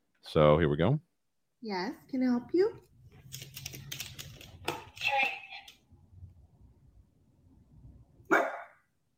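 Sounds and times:
speech: 0.3s - 3.5s
dog being trained for a treat barking: 8.3s - 8.9s.

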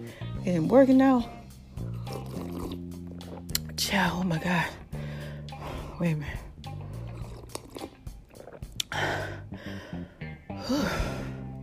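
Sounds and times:
speech: 0.0s - 1.4s, 3.8s - 4.8s, 6.0s - 6.4s
person sipping a hot cup of weight-loss detox tea: 1.8s - 3.8s, 4.9s - 10.1s
short sharp slurp: 1.8s - 3.8s, 6.3s - 9.4s.

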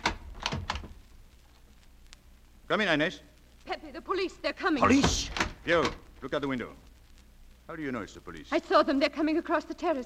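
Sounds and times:
door latch and handle clicks: 0.0s - 0.9s
speech: 2.7s - 6.8s, 7.7s - 10.0s.

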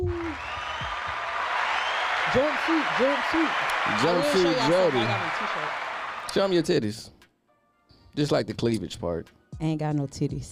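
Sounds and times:
crowd cheering and applause: 0.0s - 6.8s
voices speaking and exclaiming: 2.0s - 6.8s
speech: 2.3s - 7.2s, 8.2s - 10.4s.

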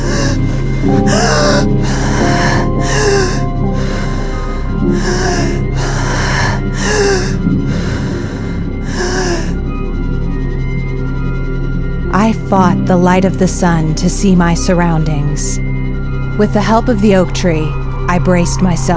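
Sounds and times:
person gasping for breath: 0.0s - 9.7s
low drone: 0.0s - 18.9s
speech: 12.5s - 15.7s, 16.4s - 18.9s.

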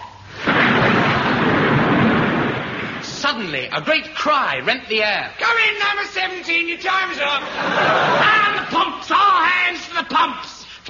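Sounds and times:
loud thunderclap as a storm breaks: 0.3s - 3.5s
roaring rumble of storm noise: 0.4s - 3.4s
speech: 3.4s - 8.9s, 9.6s - 10.8s
laughter: 7.4s - 8.7s.

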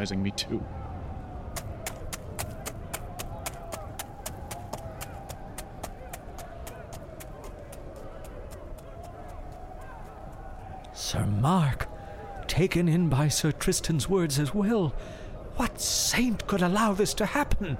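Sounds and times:
speech: 0.0s - 0.8s, 11.1s - 11.8s, 12.6s - 17.7s
horse hooves clip-clopping: 1.6s - 11.0s.

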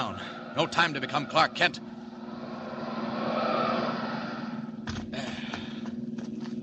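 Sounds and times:
speech: 0.0s - 1.9s
car engine humming as a car comes up the road: 0.0s - 6.6s
low constant drone: 0.0s - 6.6s.

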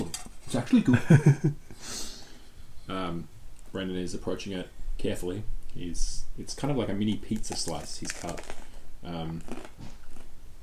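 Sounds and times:
speech: 0.5s - 2.0s, 2.9s - 10.0s
laughter: 0.8s - 1.6s
crunch of biting into bread cut like a mini pizza slice: 7.4s - 10.3s.

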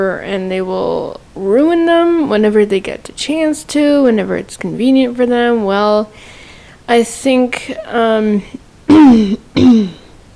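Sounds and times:
speech: 0.0s - 10.0s
person clearing throat in gravelly bursts: 8.9s - 10.1s.

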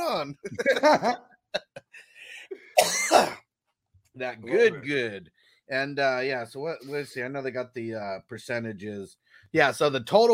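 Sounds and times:
speech: 0.1s - 1.6s, 4.2s - 10.3s
person coughing after smoking a dab: 2.5s - 3.5s
raspy throat clearing: 2.6s - 3.5s.

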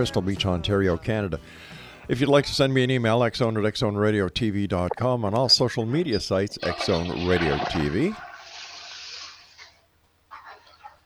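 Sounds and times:
speech: 0.0s - 8.3s
toilet refill gurgling: 6.0s - 9.9s
toilet flushing: 6.5s - 10.9s.

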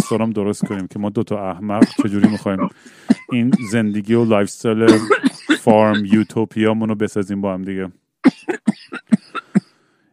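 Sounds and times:
man coughing harsh chesty coughs: 0.0s - 0.9s, 1.8s - 6.4s, 8.2s - 9.7s
speech: 0.0s - 9.0s.

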